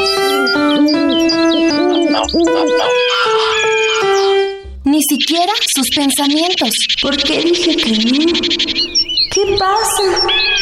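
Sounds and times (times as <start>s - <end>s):
chorus of overlapping bird calls: 0.0s - 10.6s
owl hooting: 0.1s - 10.6s
speech: 5.3s - 10.6s.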